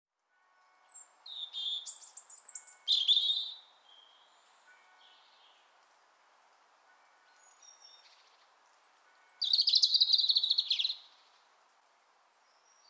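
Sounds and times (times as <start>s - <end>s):
European robin Erithacus rubecula singing whistles, warbles and jangling trills: 0.6s - 5.7s, 7.2s - 11.4s, 12.4s - 12.8s.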